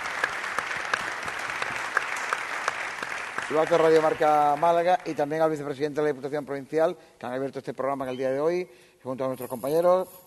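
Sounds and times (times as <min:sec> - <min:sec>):
audience applauding: 0:00.0 - 0:05.6
speech: 0:03.5 - 0:10.2.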